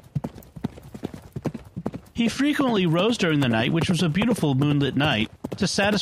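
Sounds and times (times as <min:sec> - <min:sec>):
horse hooves galloping on hard ground: 0:00.0 - 0:06.0
speech: 0:02.2 - 0:06.0.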